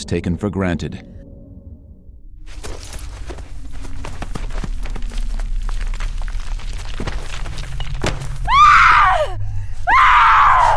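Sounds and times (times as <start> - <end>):
speech: 0.0 - 1.2
low rumble: 0.0 - 9.8
shuffling footsteps: 2.4 - 8.5
dull thuds: 2.5 - 8.5
woman screaming in high wavering cries: 8.5 - 10.7.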